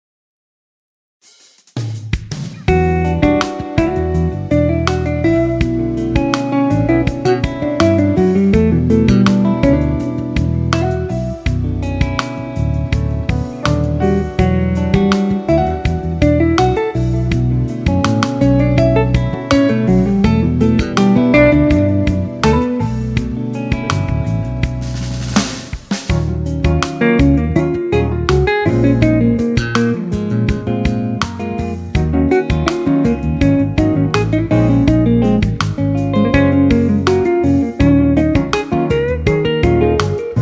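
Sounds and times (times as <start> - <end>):
guitar: 2.1 - 40.4.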